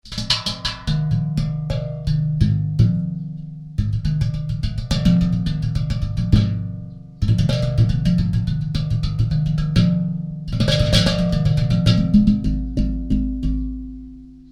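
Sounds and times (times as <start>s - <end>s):
slit pan: 0.0s - 14.4s.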